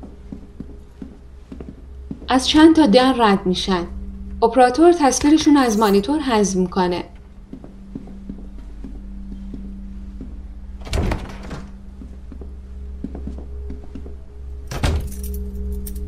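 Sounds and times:
steady low mechanical hum: 0:00.0 - 0:16.0
speech: 0:02.3 - 0:07.1
keys jangling and rattling in a lock of a door to an underground stairwell: 0:14.7 - 0:16.0.

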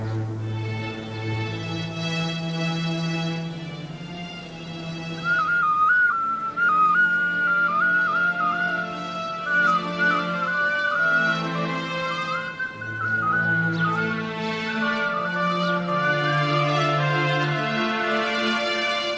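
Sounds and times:
low sustained musical tones: 0:00.0 - 0:19.1
small shrill whistle playing a simple melody: 0:05.0 - 0:19.1.

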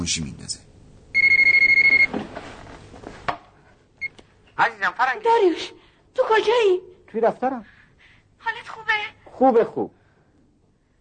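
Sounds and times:
speech: 0:00.0 - 0:00.6, 0:04.6 - 0:07.7, 0:09.4 - 0:10.0
telephone ringing with electronic trill: 0:01.2 - 0:02.1.

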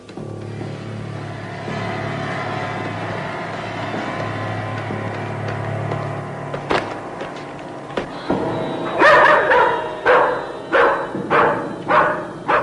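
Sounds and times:
steady low rumble: 0:00.0 - 0:11.9
dogs barking sharply: 0:09.0 - 0:12.6.

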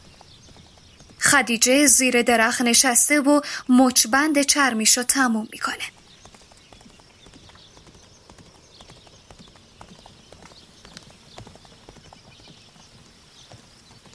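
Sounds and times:
horse hooves clip-clopping as a rider arrives on horseback: 0:00.0 - 0:03.1, 0:05.8 - 0:14.1
speech: 0:01.3 - 0:06.0.

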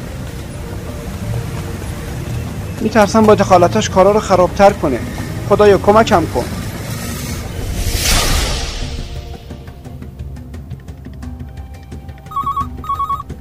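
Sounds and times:
speech: 0:02.8 - 0:06.6
sweeping whoosh: 0:06.1 - 0:10.4
telephone ringing with bright electronic trills: 0:12.2 - 0:13.4.

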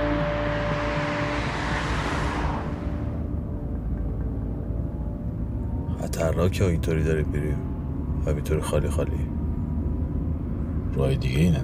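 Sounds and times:
car tire hiss on a street: 0:00.0 - 0:03.3
car driving along a street at night: 0:00.0 - 0:11.6
speech: 0:06.2 - 0:09.3, 0:11.0 - 0:11.6.

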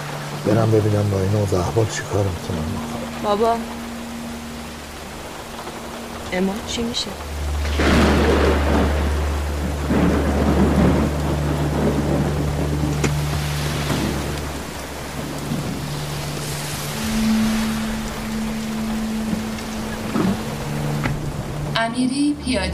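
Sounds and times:
deep thunder rumbling: 0:00.0 - 0:22.7
low continuous hum: 0:00.0 - 0:22.7
rain hissing: 0:00.0 - 0:22.7
speech: 0:00.4 - 0:03.8, 0:06.3 - 0:08.0, 0:21.9 - 0:22.7.

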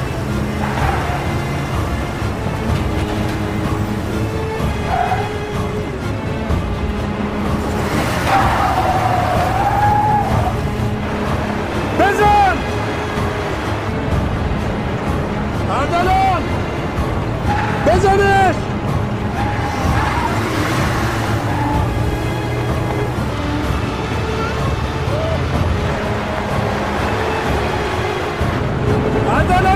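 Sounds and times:
car engines roaring in a chase: 0:00.0 - 0:29.7
tires squealing as cars swerve: 0:00.0 - 0:29.7.

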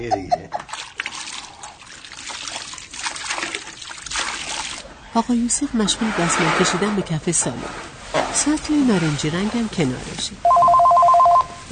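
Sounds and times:
speech: 0:00.0 - 0:00.4, 0:05.2 - 0:10.6
water trickling as a man wrings out a wet cloth in cold water: 0:00.5 - 0:04.9.

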